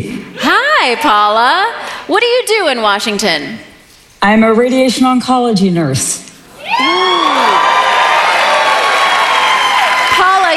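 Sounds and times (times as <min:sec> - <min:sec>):
speech: 0:00.0 - 0:07.6
studio audience applause and cheering: 0:06.6 - 0:10.5.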